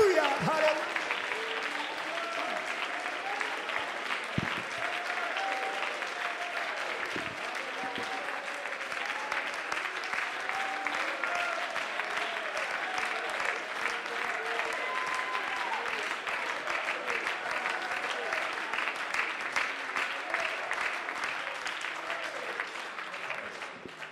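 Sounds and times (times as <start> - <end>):
large audience clapping: 0.0 - 24.1.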